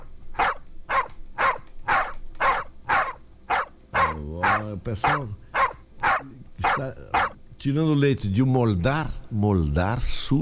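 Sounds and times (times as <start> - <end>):
dogs barking: 0.0 - 7.4
speech: 4.6 - 5.5, 6.7 - 10.4.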